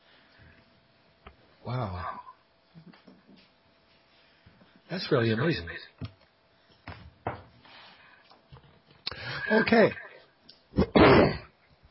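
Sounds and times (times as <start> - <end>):
speech: 1.7 - 2.2, 4.9 - 6.2, 9.5 - 10.0
throat clearing: 10.8 - 11.6.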